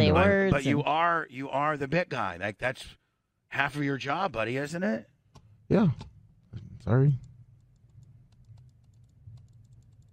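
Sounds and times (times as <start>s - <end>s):
speech: 0.0s - 5.1s, 5.7s - 6.1s, 6.8s - 7.3s
computer mouse clicking rapidly: 7.2s - 10.1s.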